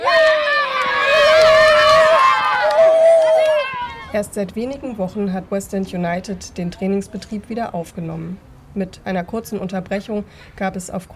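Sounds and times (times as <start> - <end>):
group of children cheering and shrieking: 0.0 - 4.2
clapping: 0.8 - 4.0
speech: 4.2 - 11.1.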